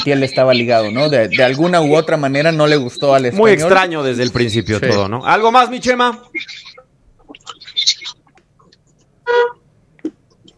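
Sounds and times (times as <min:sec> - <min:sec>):
speech: 0:00.0 - 0:06.7, 0:09.3 - 0:10.2
faint murmuring: 0:00.0 - 0:09.0
single short car horn honk: 0:09.2 - 0:09.6.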